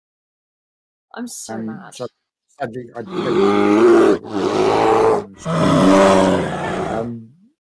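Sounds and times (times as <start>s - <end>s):
speech: 1.1s - 7.2s
person imitating a bear cub's roar and snarl: 3.0s - 7.4s.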